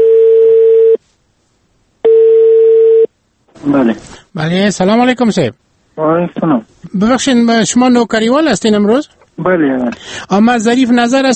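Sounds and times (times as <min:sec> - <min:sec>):
telephone ringing tones as a call connects: 0:00.0 - 0:01.0, 0:02.0 - 0:03.1
speech: 0:03.6 - 0:11.3.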